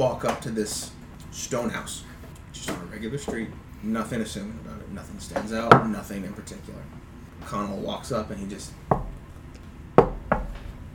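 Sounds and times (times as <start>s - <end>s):
speech: 0.0s - 8.8s
knocks on a door: 8.9s - 9.2s, 10.0s - 10.6s.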